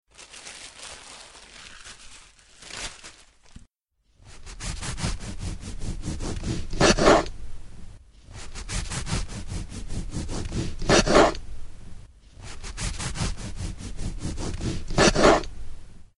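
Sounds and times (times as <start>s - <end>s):
bread being cut: 4.3s - 7.3s, 8.3s - 11.4s, 12.4s - 15.5s.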